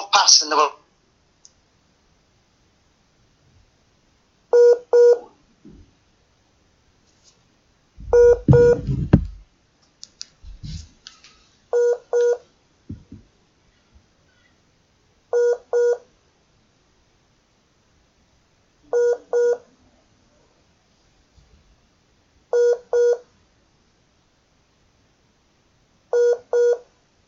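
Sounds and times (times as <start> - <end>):
speech: 0.2 - 0.8
telephone tones while reconnecting a dropped call: 4.6 - 5.2, 8.1 - 9.0, 11.8 - 12.4, 15.4 - 16.0, 18.9 - 19.6, 22.5 - 23.2, 26.1 - 26.8
rumbling knock: 8.0 - 9.4, 12.9 - 13.3.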